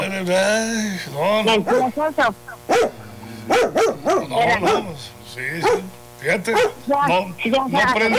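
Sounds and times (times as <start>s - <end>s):
speech: 0.2s - 8.1s
dog barking agitatedly: 1.6s - 1.9s, 2.7s - 5.0s, 5.6s - 5.9s, 6.5s - 6.8s.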